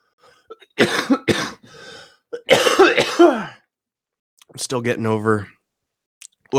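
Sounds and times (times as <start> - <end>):
person coughing: 0.4 - 3.6
speech: 4.6 - 5.6.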